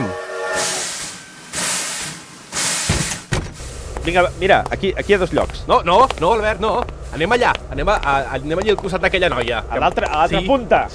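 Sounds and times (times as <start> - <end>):
steam venting from a commuter train: 0.5 - 8.4
low rumble: 3.5 - 10.1
speech: 4.0 - 10.9.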